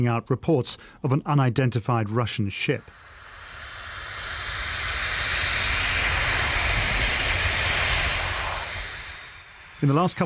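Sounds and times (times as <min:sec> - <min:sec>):
speech: 0:00.0 - 0:03.2, 0:09.8 - 0:10.2
military jet aircraft roaring overhead: 0:02.8 - 0:10.2.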